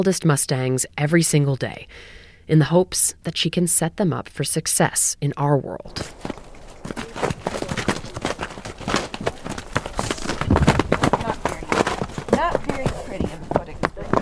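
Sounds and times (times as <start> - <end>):
speech: 0.0 - 7.0
horse galloping around a round pen on soft ground: 5.9 - 14.2.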